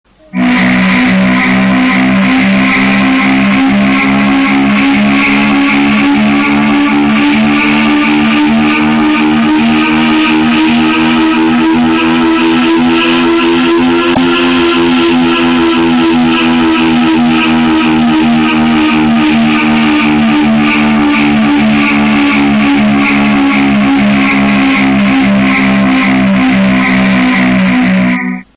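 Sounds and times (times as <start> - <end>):
Toyota car sound: 0.0 - 28.5.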